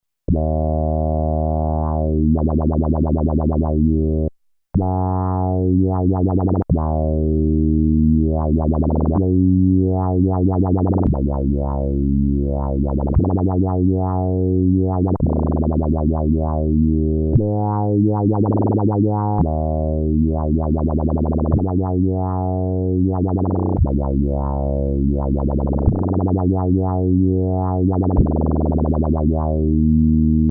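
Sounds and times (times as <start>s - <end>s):
Roland Alpha Juno synth wobbling: 0.3s - 30.4s.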